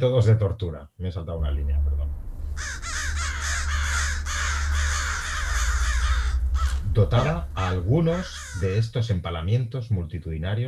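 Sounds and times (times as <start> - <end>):
speech: 0.0 - 2.8, 7.0 - 10.6
steady low rumble: 1.4 - 9.0
flock of crows cawing: 2.5 - 8.8.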